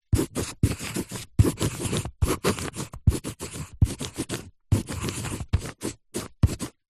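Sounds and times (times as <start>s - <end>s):
thick office artist's pencil writing on paper: 0.0s - 6.8s.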